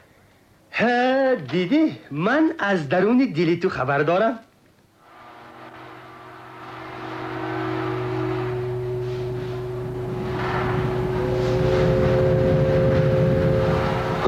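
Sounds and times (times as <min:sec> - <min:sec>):
speech: 0:00.8 - 0:04.5
heavy truck engine droning in a courtyard: 0:05.0 - 0:14.2.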